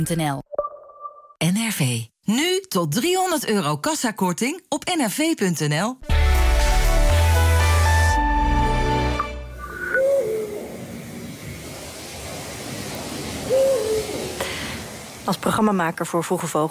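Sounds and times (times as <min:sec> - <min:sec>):
speech: 0:00.0 - 0:00.5, 0:01.4 - 0:06.4, 0:15.3 - 0:16.6
loud burst of music: 0:06.0 - 0:09.3
hoot-like bird calls: 0:09.6 - 0:11.2, 0:13.4 - 0:14.4
faint hiss: 0:09.6 - 0:16.6.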